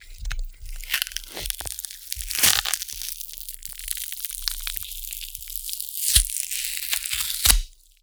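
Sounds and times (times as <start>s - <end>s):
cardboard tearing slowly: 0.0s - 7.9s.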